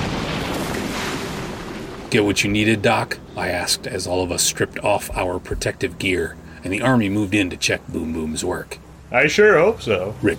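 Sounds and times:
explosion rumble: 0.0 - 3.3
speech: 2.1 - 10.3.

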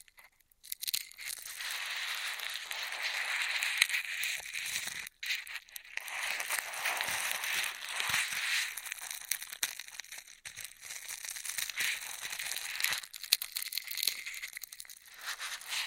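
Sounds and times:
bright crinkling and crackling of straws: 0.9 - 15.8.

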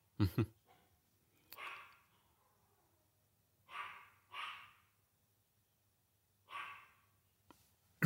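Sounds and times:
dog barking excitedly downstairs: 3.7 - 4.8, 6.5 - 7.0.

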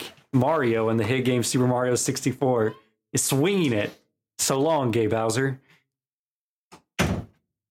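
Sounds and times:
speech: 0.4 - 5.6
door being pushed shut: 7.0 - 7.4.

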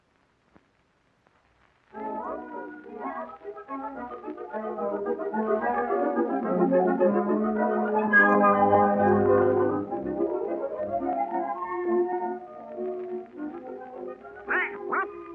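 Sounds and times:
music: 2.0 - 15.3
nasal squawking voice imitating a duck quacking: 14.5 - 15.3.

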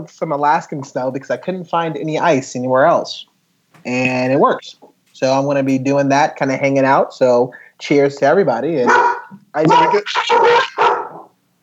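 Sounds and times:
speech: 0.0 - 10.8
dog barking: 8.8 - 11.3.

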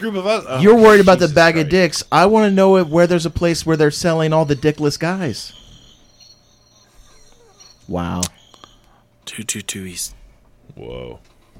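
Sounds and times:
speech: 0.0 - 5.6, 7.9 - 8.4, 9.4 - 11.5
crickets chirping: 1.5 - 9.0.

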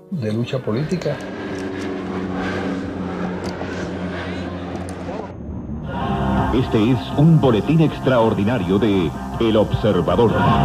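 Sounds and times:
Bronco military propeller plane flying overhead: 0.0 - 10.6
speech: 0.1 - 1.4, 6.5 - 10.6.

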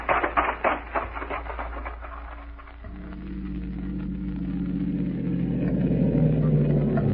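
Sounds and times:
rhythmic clattering: 0.0 - 7.1
car engine droning while picking up speed along a road: 2.8 - 7.1.

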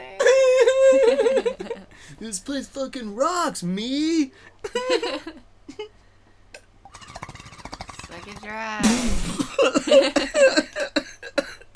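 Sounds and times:
laughter: 0.0 - 2.1, 4.6 - 5.9, 9.3 - 11.4
speech: 2.0 - 5.9, 8.3 - 10.6
harsh rasping coughing fit: 8.8 - 11.7.

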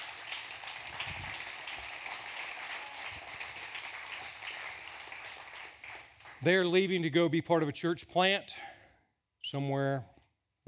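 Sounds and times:
audience clapping and applauding: 0.0 - 6.6
speech: 6.4 - 8.7, 9.5 - 10.1.

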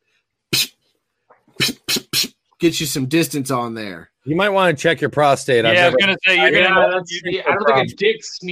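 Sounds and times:
voice imitating a water spout spraying: 0.5 - 0.8, 1.5 - 2.4
speech: 2.6 - 8.4.

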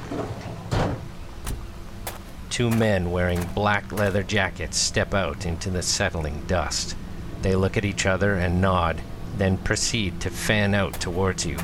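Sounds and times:
low engine-like hum: 0.0 - 11.6
van side door sliding open with a heavy rumbling thud: 0.1 - 2.2
speech: 2.6 - 11.6.

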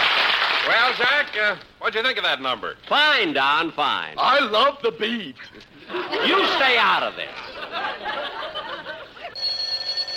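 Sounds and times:
speech: 0.7 - 8.6
lively chattering laughter: 5.4 - 9.4
telephone bell ringing: 9.4 - 10.1.

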